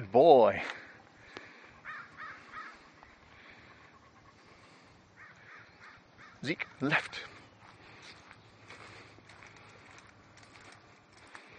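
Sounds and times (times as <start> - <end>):
steady outdoor noise: 0.0 - 11.5
speech: 0.1 - 0.8, 6.4 - 7.4
crow cawing: 1.2 - 7.3.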